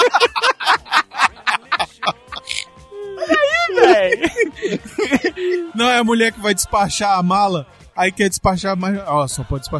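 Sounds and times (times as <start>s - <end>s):
laughter: 0.0s - 5.8s
person performing fake orgasm moaning: 2.3s - 5.8s
breathy panting: 4.4s - 5.7s
speech: 5.8s - 9.7s.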